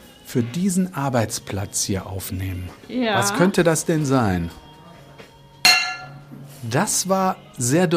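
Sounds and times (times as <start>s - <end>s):
speech: 0.3s - 4.6s, 6.6s - 7.9s
struck metal pan clanking with a bright ringing tone: 5.7s - 6.2s.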